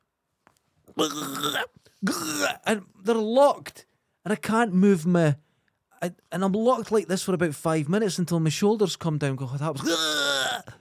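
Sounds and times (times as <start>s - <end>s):
person imitating dry heave retching: 0.9s - 2.7s, 9.8s - 10.7s
speech: 1.0s - 5.4s, 6.0s - 10.3s
quiet breaths: 5.4s - 5.9s.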